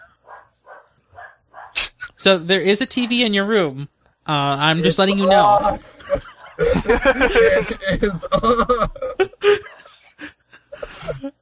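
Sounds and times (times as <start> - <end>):
dog barking: 0.0 - 1.8
speech: 2.2 - 9.7
laughter: 5.2 - 11.3.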